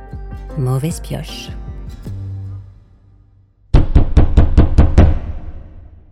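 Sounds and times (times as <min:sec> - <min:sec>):
speech: 0:00.6 - 0:02.0
knocking on a door: 0:03.8 - 0:05.4.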